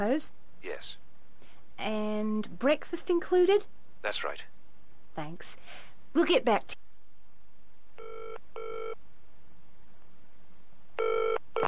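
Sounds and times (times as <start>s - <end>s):
speech: 0.0s - 1.0s, 1.8s - 4.6s, 5.2s - 6.8s
telephone ringback tone from a call placed to a hotel: 8.0s - 9.0s, 11.0s - 11.6s.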